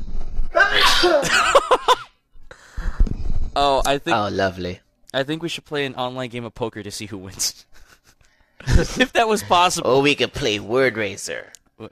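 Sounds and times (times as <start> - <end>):
person sneezing: 0.6 - 1.3
breathy gasps: 2.5 - 3.1
speech: 3.6 - 7.7, 8.7 - 11.9.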